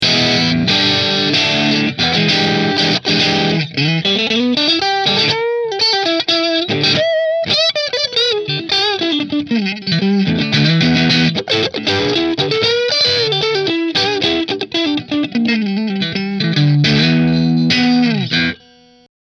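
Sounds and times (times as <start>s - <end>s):
double cutaway flame maple top electric guitar through a Marshall amplifier: 0.0s - 19.1s.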